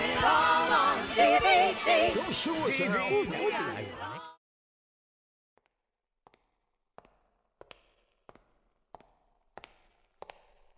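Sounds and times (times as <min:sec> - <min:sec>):
music: 0:00.0 - 0:04.4
voice: 0:01.9 - 0:04.3
footsteps coming down a hallway: 0:05.6 - 0:10.7.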